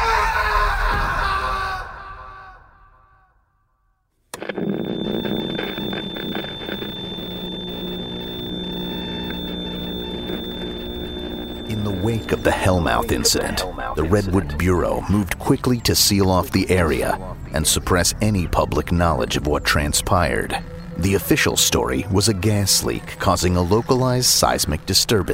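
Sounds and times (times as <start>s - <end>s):
human scream echoing through a chamber: 0.0s - 3.1s
dense steady rumbling drone: 4.4s - 25.3s
speech: 12.3s - 25.3s.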